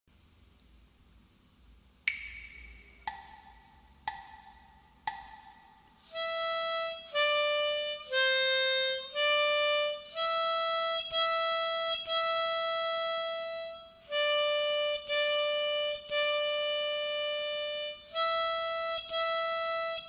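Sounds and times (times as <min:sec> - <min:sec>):
gaita bagpipe playing sight-reading exercises: 0:06.1 - 0:20.0.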